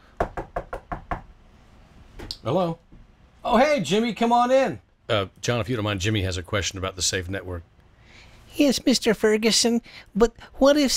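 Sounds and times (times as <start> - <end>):
firm knocking on a door: 0.2 - 1.4
speech: 2.4 - 10.9.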